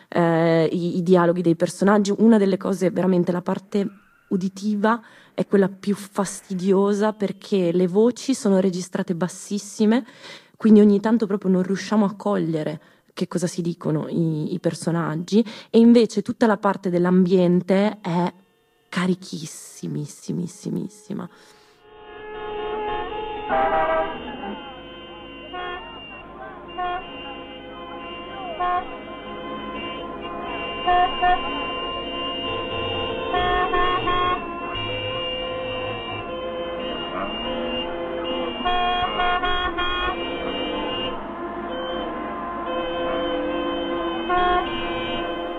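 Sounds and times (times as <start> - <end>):
busy street traffic: 0.0 - 15.8, 17.1 - 45.5
speech: 0.7 - 21.6, 23.5 - 24.0, 30.9 - 31.7
honking horns in street traffic: 18.2 - 19.3, 20.5 - 45.5.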